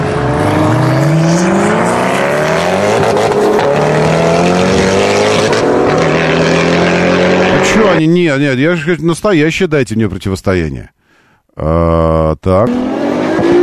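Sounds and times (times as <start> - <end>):
Ferrari LaFerrari hypercar engine accelerating: 0.0 - 8.0
speech: 8.0 - 11.0, 11.6 - 13.6.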